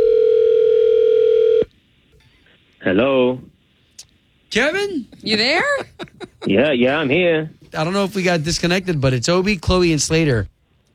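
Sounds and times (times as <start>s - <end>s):
telephone dial tone while redialing a call: 0.0s - 1.7s
speech: 2.8s - 3.5s, 4.5s - 10.5s
laughter: 4.9s - 7.2s.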